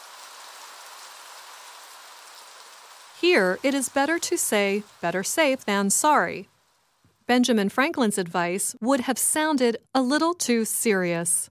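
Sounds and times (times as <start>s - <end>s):
rain falling: 0.0s - 7.3s
speech: 3.2s - 6.5s, 7.3s - 11.4s.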